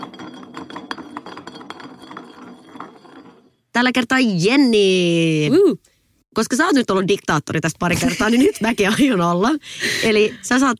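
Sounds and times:
glass bottle spinning on a table: 0.0s - 4.0s
speech: 3.8s - 10.7s.

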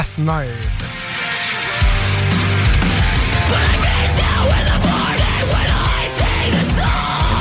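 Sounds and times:
speech: 0.0s - 1.0s, 3.5s - 4.8s
heavy distorted guitars in a metal rock cover of a pop song: 0.0s - 7.3s
pounding low drums: 2.0s - 7.3s
harsh screamed vocals: 3.2s - 7.3s.

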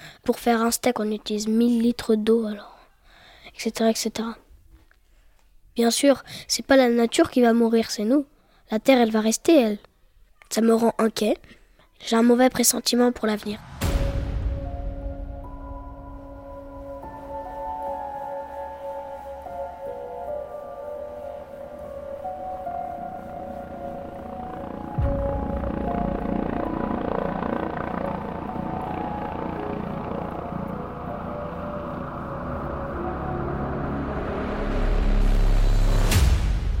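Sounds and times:
speech: 0.2s - 2.7s, 3.6s - 4.4s, 5.8s - 9.9s, 10.5s - 13.8s
helicopter rotor and engine droning overhead: 14.6s - 36.1s.

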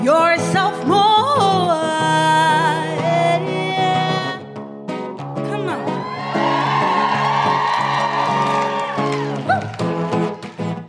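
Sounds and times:
speech: 0.0s - 1.1s
steady musical backdrop: 0.0s - 10.8s
audience cheering and whooping: 5.7s - 9.9s
scattered audience clapping: 6.7s - 10.8s.

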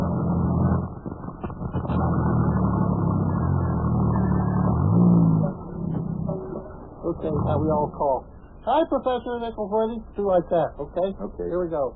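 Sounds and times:
car engine rumbling while pulling up and stopping: 0.0s - 8.5s
speech: 7.2s - 11.9s.

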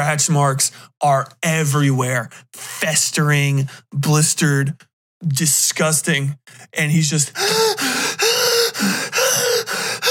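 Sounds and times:
speech: 0.0s - 7.9s
voice imitating labored gasping breaths: 7.3s - 10.0s.

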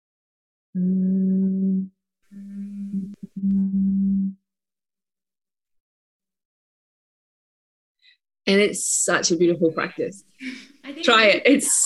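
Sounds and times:
speech: 0.8s - 1.2s, 8.5s - 11.8s
person humming with hands over ears in humming bee breath: 0.8s - 4.4s.

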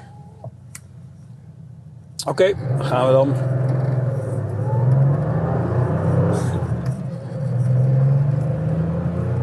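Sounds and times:
road rumble: 0.0s - 9.4s
speech: 2.2s - 3.6s
Porsche car engine accelerating through gears one to five: 2.3s - 9.4s.

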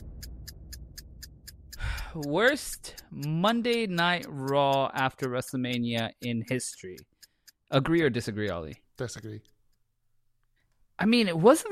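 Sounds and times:
sudden burst of noise: 0.0s - 2.2s
low steady rumble: 0.0s - 3.4s
clock ticking: 0.0s - 10.0s
speech: 2.1s - 7.1s, 7.7s - 9.5s, 11.0s - 11.6s.

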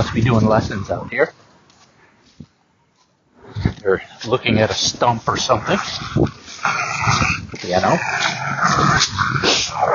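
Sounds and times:
speech: 0.0s - 1.4s, 3.6s - 9.9s
dog growling with snarly bursts: 5.2s - 9.9s.

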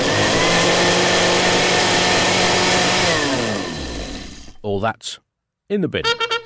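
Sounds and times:
food processor whizzing toast with peanut butter, jam and tartar sauce: 0.0s - 4.6s
speech: 4.7s - 6.3s.

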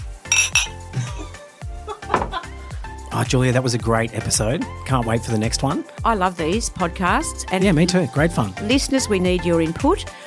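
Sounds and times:
glasses clinking together in a toast: 0.3s - 1.0s
speech: 3.2s - 10.2s.

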